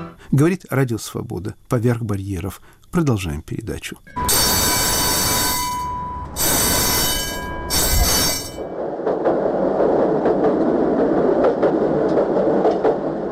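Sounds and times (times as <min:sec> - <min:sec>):
speech: 0:00.4 - 0:04.6
tram rumbling and clattering over the track: 0:04.0 - 0:13.3
tram wheels squealing on rails: 0:04.1 - 0:08.8.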